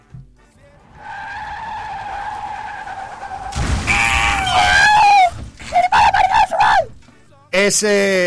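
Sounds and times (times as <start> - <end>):
car tire screech as a car skids: 0.8 - 7.0
cat yowling after being run over by a car: 3.9 - 6.9
speech: 7.6 - 8.2.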